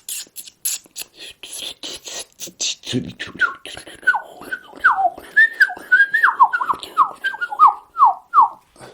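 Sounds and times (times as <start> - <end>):
person whistling an imitation of blackcap song: 4.9 - 8.6.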